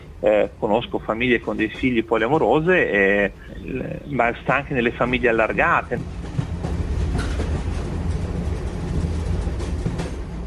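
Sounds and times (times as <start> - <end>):
train rumbling on rails: 0.0 - 10.4
speech: 0.2 - 6.2
faint rhythmic clacking from train wheels: 3.5 - 10.4.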